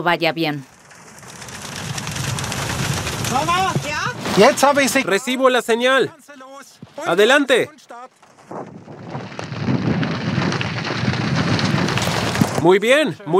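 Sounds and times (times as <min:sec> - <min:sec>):
speech: 0:00.0 - 0:00.7, 0:03.3 - 0:03.8, 0:04.4 - 0:06.4, 0:07.0 - 0:08.7, 0:12.6 - 0:13.3
deep rolling thunder from a hail-producing thunderstorm: 0:00.7 - 0:04.2, 0:08.5 - 0:12.7
heavy storm rain from a hail-producing thunderstorm: 0:00.8 - 0:04.4, 0:09.6 - 0:12.6.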